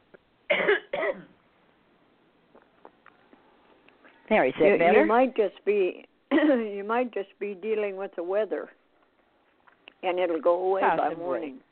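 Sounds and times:
harsh coughs clearing a throat: 0.5 - 1.4
speech: 4.3 - 8.8, 10.0 - 11.7.

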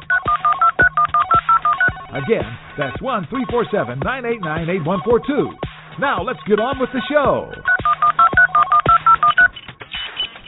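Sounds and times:
telephone keypad DTMF dialing tones: 0.0 - 2.3, 7.7 - 9.6
speech: 2.2 - 7.7.

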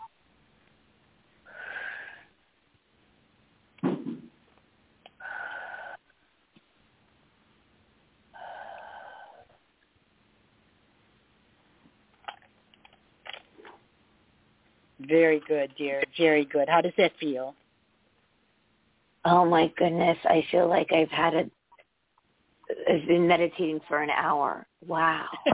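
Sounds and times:
deep breaths during a guided breathing exercise: 1.4 - 2.4, 5.2 - 6.1, 8.4 - 9.6
speech: 15.1 - 17.6, 19.2 - 21.6, 22.9 - 25.5.

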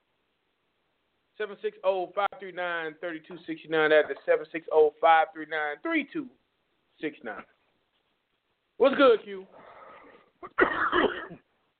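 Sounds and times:
speech: 1.4 - 6.4, 7.0 - 7.5, 8.8 - 9.6, 10.4 - 11.4
catch of breath: 9.5 - 10.4
person coughing: 10.4 - 11.5.

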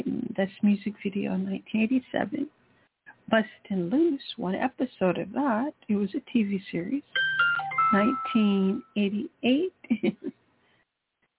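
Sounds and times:
speech: 0.0 - 2.6, 3.3 - 10.3
phone electronic notification beeps: 7.2 - 8.9.

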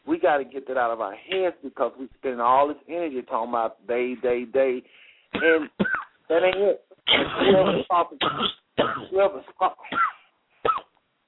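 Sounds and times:
speech: 0.2 - 10.1
person clearing throat: 5.4 - 6.1, 7.1 - 9.2, 9.8 - 10.9
person coughing: 5.4 - 6.1, 7.1 - 9.2, 9.8 - 10.9.

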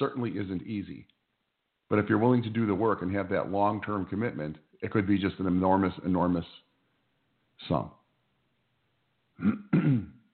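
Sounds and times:
speech: 0.0 - 1.2, 1.9 - 6.6, 7.6 - 8.0, 9.4 - 10.1
man with a cough clearing his throat: 9.4 - 10.3.

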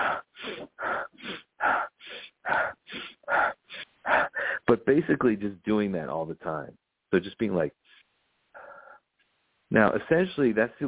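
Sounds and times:
person imitating toned-down intense rapid breathing technique: 0.0 - 4.7, 7.8 - 9.1
speech: 4.8 - 7.8, 9.8 - 10.8.

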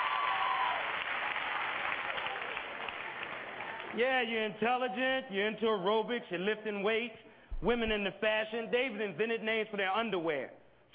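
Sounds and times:
audience applause during a stand-up comedy show: 0.0 - 4.0
speech: 3.9 - 10.9.

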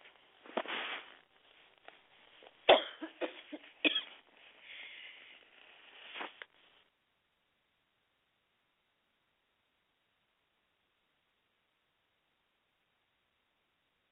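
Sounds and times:
harsh rough coughing: 2.7 - 4.2
breathy noise between coughs: 4.4 - 5.6.

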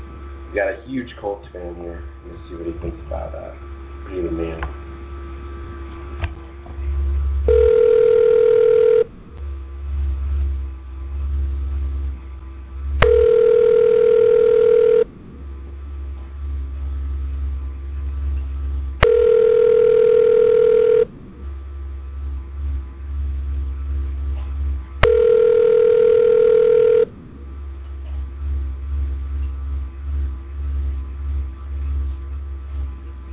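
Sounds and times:
low hum: 0.0 - 33.3
speech: 0.5 - 4.8
telephone ringback tone on an outgoing call: 7.5 - 9.1, 13.0 - 15.1, 19.0 - 21.1, 25.0 - 27.1.

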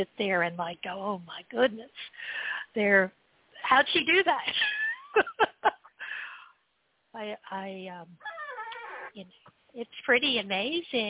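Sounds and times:
speech: 0.0 - 5.8, 7.1 - 8.3, 9.2 - 11.0
pet cat meowing: 8.2 - 9.1.

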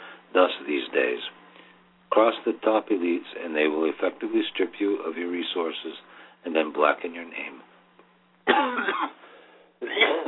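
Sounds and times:
speech: 0.4 - 1.4, 2.1 - 7.7, 8.5 - 9.2
person coughing: 8.5 - 9.2, 9.8 - 10.2.

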